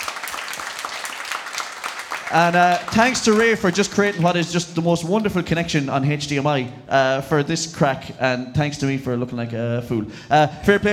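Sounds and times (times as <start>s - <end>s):
crowd applauding: 0.0s - 4.8s
speech: 2.3s - 10.9s.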